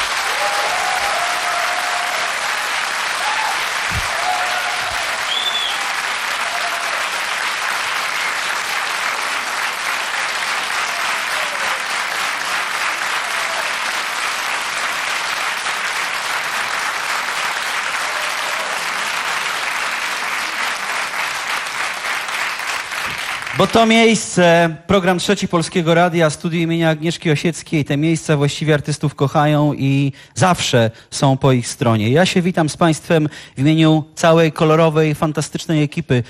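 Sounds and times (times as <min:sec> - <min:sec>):
audience applause in a concert studio: 0:00.0 - 0:23.9
speech: 0:23.6 - 0:36.2.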